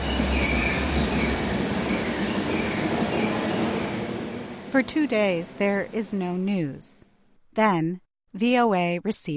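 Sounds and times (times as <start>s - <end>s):
high-pitched metallic squeal from train wheels: 0.0s - 4.1s
train rolling along the rails: 0.0s - 6.2s
speech: 4.7s - 7.0s, 7.6s - 9.3s.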